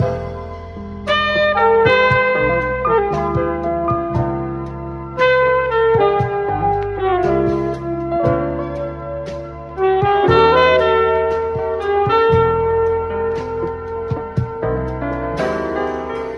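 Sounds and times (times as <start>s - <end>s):
piano loop: 0.0s - 16.3s
saxophone loop: 0.0s - 16.3s.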